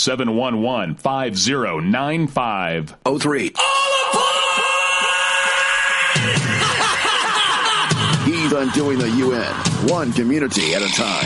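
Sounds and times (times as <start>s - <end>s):
speech: 0.0s - 4.7s, 8.6s - 11.2s
loud shrill screaming: 3.6s - 7.9s
laughter: 4.1s - 9.7s.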